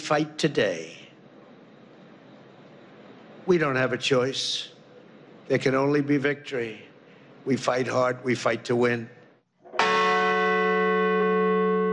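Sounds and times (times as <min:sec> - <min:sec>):
speech: 0:00.1 - 0:01.0, 0:03.4 - 0:04.7, 0:05.5 - 0:09.2
church bell ringing at a memorial ceremony at a plane crash site in a field: 0:09.7 - 0:11.9.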